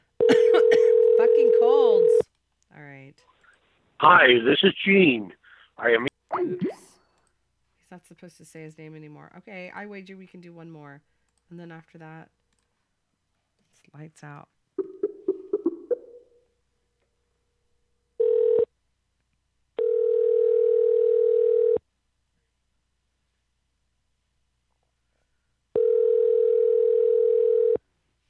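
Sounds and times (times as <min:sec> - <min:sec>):
telephone line buzzing ringback tone: 0:00.5 - 0:02.2, 0:18.2 - 0:18.7, 0:19.8 - 0:21.8, 0:25.8 - 0:27.8
speech: 0:04.1 - 0:06.8, 0:07.9 - 0:12.4, 0:13.8 - 0:14.6.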